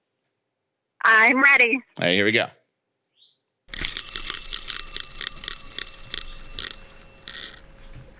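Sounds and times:
speech: 1.2 - 2.6
rickety pizza cutter wheel spinning with metallic rattling: 3.7 - 7.8.

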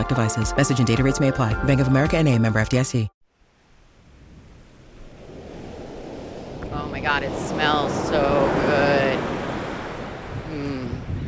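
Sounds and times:
speech: 0.0 - 3.2, 6.9 - 8.9
Atlantic Ocean surf washing onto a beach at the Jersey Shore: 3.5 - 11.2
wind buffeting the microphone: 3.8 - 11.2.

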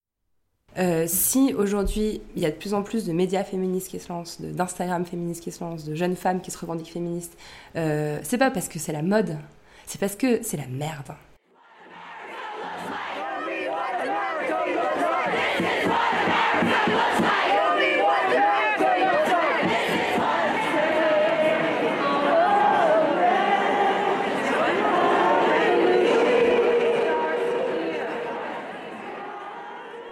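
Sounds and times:
speech: 0.8 - 11.3
large protest crowd chanting and shouting in unison: 11.5 - 30.0.

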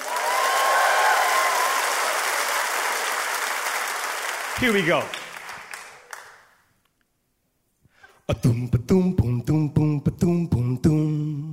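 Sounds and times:
audience clapping: 0.0 - 6.7
speech: 4.6 - 5.2, 8.3 - 11.5.

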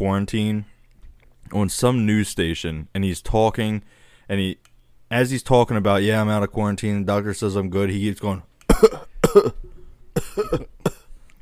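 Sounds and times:
speech: 0.0 - 0.7, 1.5 - 9.7, 10.4 - 10.7
person imitating coughing: 8.7 - 9.6, 10.2 - 11.1.

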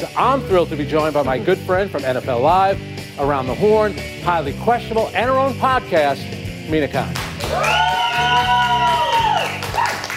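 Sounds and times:
speech: 0.0 - 7.8
audience cheering with whoops and hollers for a guest on a TV sports show: 7.4 - 10.1.

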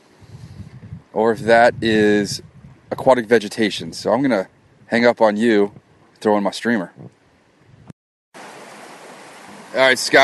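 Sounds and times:
speech: 1.2 - 7.2, 9.8 - 10.2
flowing river tributary stream water rushing: 8.4 - 10.2.

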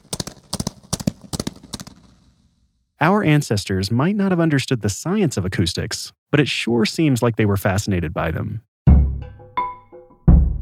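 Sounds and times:
echoing hoofbeats of galloping horses: 0.0 - 2.6
speech: 3.0 - 8.7.

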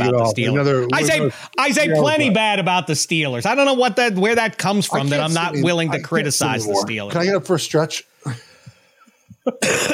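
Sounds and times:
speech: 0.0 - 8.4, 9.5 - 9.9
breathing: 1.3 - 1.6, 8.2 - 9.4
forceful mock COVID cough: 9.5 - 9.9.

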